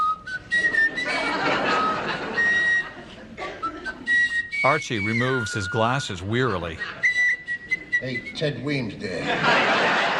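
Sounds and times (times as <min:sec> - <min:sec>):
person whistling a tune: 0:00.0 - 0:08.6
faint murmur: 0:00.0 - 0:09.1
laughter: 0:00.6 - 0:04.3, 0:06.3 - 0:07.5, 0:09.0 - 0:10.1
speech: 0:04.6 - 0:07.0, 0:08.0 - 0:10.1.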